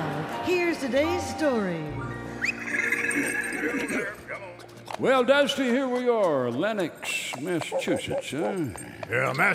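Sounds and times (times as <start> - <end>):
speech: 0.8 - 2.1, 3.2 - 9.5
horse giving a high wavering whinny: 2.2 - 4.5.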